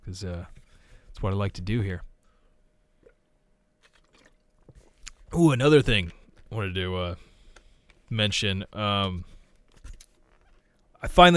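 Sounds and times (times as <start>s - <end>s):
faint hum: 0.0s - 11.3s
speech: 0.1s - 0.6s, 1.2s - 2.1s, 5.3s - 7.3s, 8.1s - 9.3s, 11.0s - 11.3s
person sipping water: 3.8s - 5.3s.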